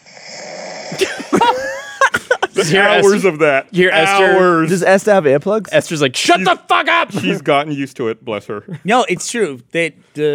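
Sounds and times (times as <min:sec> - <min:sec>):
person imitating loud snoring: 0:00.0 - 0:01.3
speech: 0:00.9 - 0:01.8, 0:02.6 - 0:10.3
laughter: 0:01.0 - 0:03.2.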